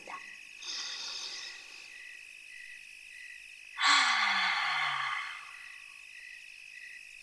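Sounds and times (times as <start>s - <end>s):
steady hum of crickets or frogs: 0.0s - 7.2s
louder longer exhale like a sigh: 0.6s - 2.0s, 3.8s - 6.0s
slow soft deep inhale: 0.6s - 2.1s, 3.8s - 6.0s.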